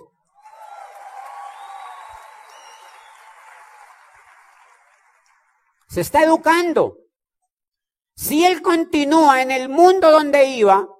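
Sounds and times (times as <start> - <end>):
faint whoops: 0.4 - 4.2
audience applause for a small boy: 0.4 - 5.9
speech: 5.9 - 7.0, 8.2 - 10.9.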